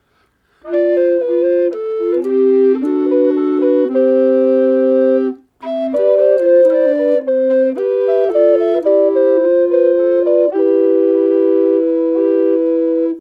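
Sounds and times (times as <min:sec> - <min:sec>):
recorder trio playing: 0:00.6 - 0:13.1.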